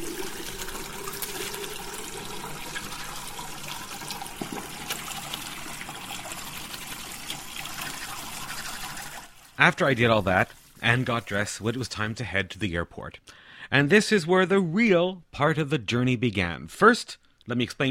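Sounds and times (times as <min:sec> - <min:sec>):
shower water spraying and splashing: 0:00.0 - 0:12.1
speech: 0:09.6 - 0:17.8.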